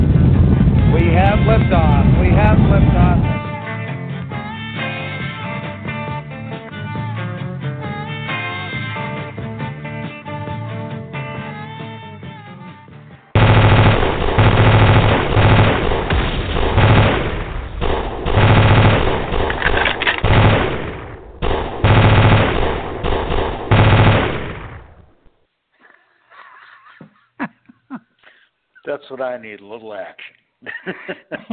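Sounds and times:
music: 0.1 - 13.4
speech: 1.2 - 3.4, 29.1 - 31.5
loud sustained automatic gunfire: 13.4 - 25.2
laughter: 25.8 - 28.2, 30.6 - 31.5.

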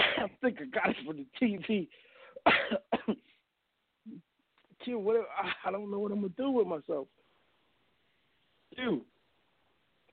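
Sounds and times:
person coughing: 0.0 - 0.4, 2.4 - 3.4
speech: 0.4 - 3.2, 4.8 - 7.2, 8.8 - 9.1.

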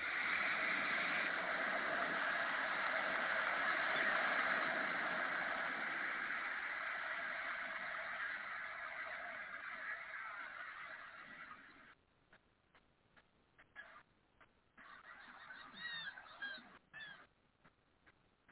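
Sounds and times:
Gulf of Mexico water washing: 0.0 - 11.5.

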